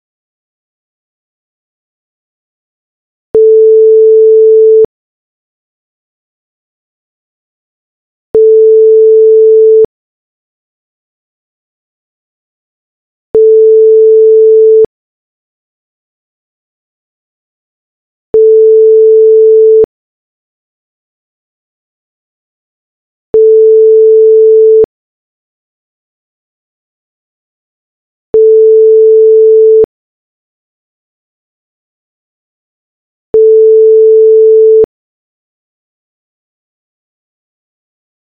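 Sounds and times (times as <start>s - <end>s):
phone ringback tone: 3.3s - 4.9s, 8.3s - 9.9s, 13.3s - 14.9s, 18.3s - 19.9s, 23.3s - 24.9s, 28.3s - 29.9s, 33.3s - 34.9s.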